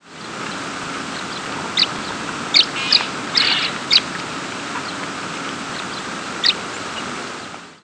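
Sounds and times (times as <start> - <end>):
steady background hum: 0.0 - 7.8
tree swallow giving short sharp high chirps: 1.1 - 4.2, 5.7 - 7.1.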